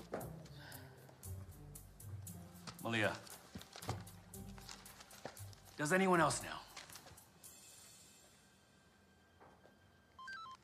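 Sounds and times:
speech: 2.8s - 3.3s, 5.8s - 6.7s
faint hiss in a room: 6.2s - 9.2s
mobile phone beeping: 10.2s - 10.6s.

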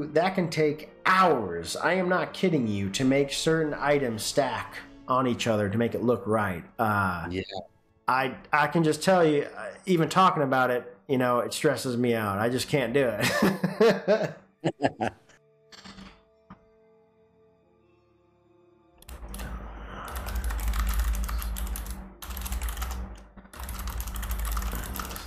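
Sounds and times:
speech: 0.0s - 15.2s
laughter: 13.2s - 15.3s
typing on a computer keyboard in a game: 19.0s - 25.2s.

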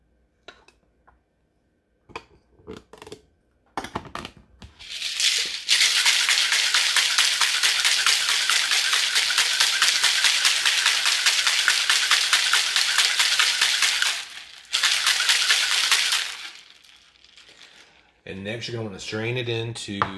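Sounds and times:
ice and liquid rattling in a cocktail shaker: 4.8s - 18.1s
speech: 18.6s - 20.1s.

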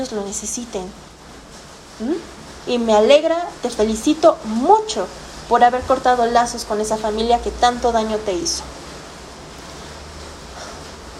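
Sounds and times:
speech: 0.0s - 1.2s, 2.0s - 8.8s
steady rain falling outside: 0.0s - 11.1s.

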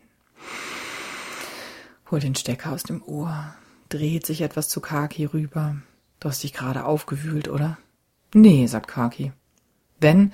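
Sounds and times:
man taking a deep inhalation: 0.4s - 2.0s
speech: 2.1s - 9.4s, 10.0s - 10.3s.

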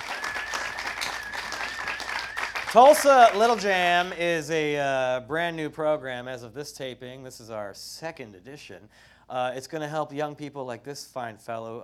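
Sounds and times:
audience applause at a live music fundraiser taping: 0.0s - 4.1s
speech: 2.7s - 11.8s.

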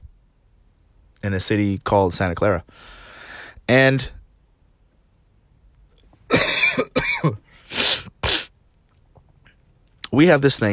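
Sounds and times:
speech: 1.2s - 3.0s, 3.7s - 4.2s, 10.2s - 10.7s
person with a cold coughing harshly: 6.3s - 7.4s.

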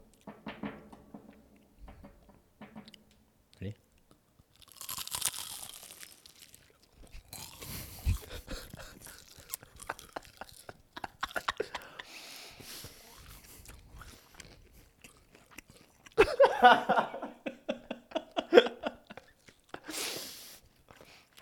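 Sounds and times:
speech: 3.6s - 3.8s, 16.6s - 17.0s
crunching and chewing crisp food: 4.0s - 11.6s, 12.6s - 16.2s, 19.1s - 19.8s, 20.6s - 21.4s
laughter: 7.6s - 12.9s, 16.2s - 20.2s.

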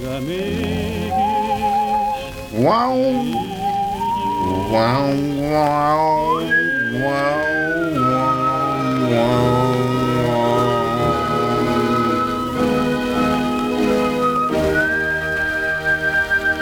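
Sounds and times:
speech: 0.0s - 1.0s, 2.6s - 3.6s, 4.4s - 8.3s, 9.1s - 9.7s
faint record hiss: 0.0s - 16.6s
old gramophone record made in England playing a tune: 0.0s - 16.6s
high whistle-like melody over sustained accompaniment: 0.1s - 16.6s.

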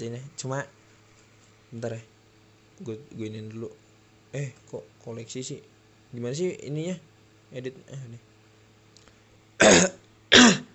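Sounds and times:
speech: 0.0s - 0.8s, 1.7s - 2.1s, 2.8s - 8.3s
person coughing harshly: 9.6s - 10.7s.

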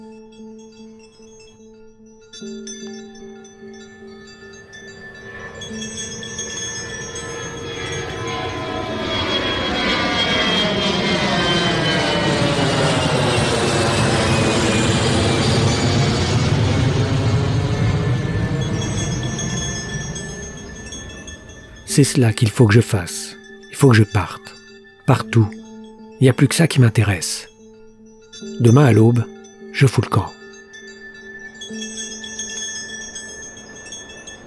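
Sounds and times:
airliner jet engines warming up on the tarmac: 5.5s - 21.9s
speech: 22.0s - 24.5s, 25.1s - 25.6s, 26.2s - 27.5s, 28.5s - 30.4s.

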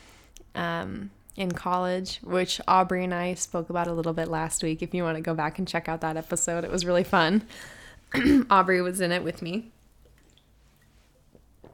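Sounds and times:
low steady hum: 0.0s - 11.7s
speech: 0.6s - 9.8s
person sipping a drink: 10.0s - 11.7s.

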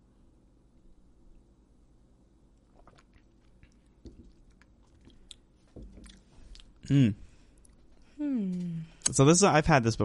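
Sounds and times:
person sipping and tasting farmhouse saison-style beer: 2.6s - 8.6s
speech: 6.9s - 7.2s, 9.2s - 10.0s.

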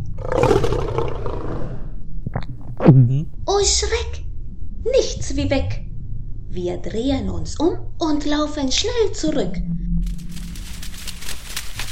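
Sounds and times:
lion roaring: 0.0s - 1.9s
speech: 2.9s - 4.2s, 4.8s - 5.8s, 6.5s - 9.8s.

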